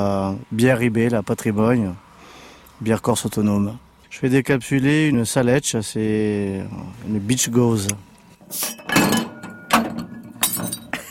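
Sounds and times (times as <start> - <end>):
speech: 0.0 - 2.0, 2.8 - 9.2
drinking glass falling and breaking during a craft beer tasting: 8.5 - 11.1.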